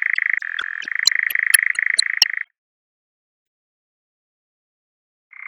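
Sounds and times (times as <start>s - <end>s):
European nightjar reeling churr: 0.1s - 2.4s
sharp clicks: 0.1s - 2.4s.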